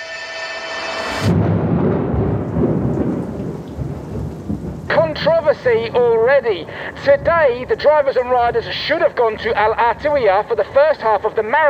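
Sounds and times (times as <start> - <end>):
brief tonal sound: 0.0 - 1.4
heavy rain flooding a rally bivouac at Al Artawiya: 0.0 - 11.6
low rumbling: 1.0 - 11.3
speech: 5.2 - 11.6.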